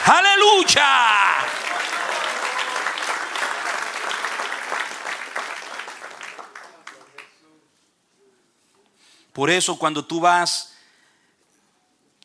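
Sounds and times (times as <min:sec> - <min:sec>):
audience applauding: 0:00.0 - 0:07.4
speech: 0:00.1 - 0:01.6, 0:09.4 - 0:10.7.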